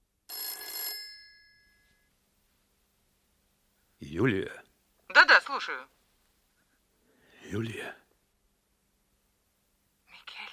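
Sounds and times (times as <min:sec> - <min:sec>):
telephone bell ringing as a call is placed to a hotel: 0:00.3 - 0:02.1
speech: 0:04.1 - 0:04.6, 0:05.6 - 0:06.0, 0:07.5 - 0:08.0.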